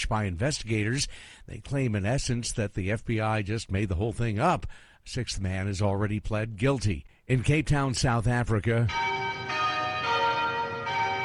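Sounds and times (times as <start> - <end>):
speech: 0.1 - 9.5
cathedral church bells ringing: 8.9 - 11.2.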